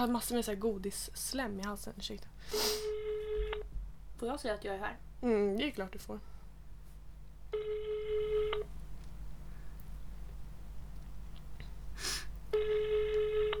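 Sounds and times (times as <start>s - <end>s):
speech: 0.0s - 2.9s, 4.2s - 6.3s, 7.5s - 8.0s
ringback tones of an unanswered phone call over the line: 2.9s - 3.6s, 7.6s - 8.7s, 12.6s - 13.5s.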